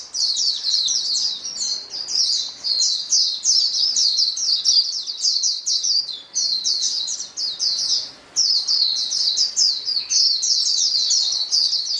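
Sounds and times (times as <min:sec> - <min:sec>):
chorus of many white-eyes singing together: 0:00.0 - 0:11.9.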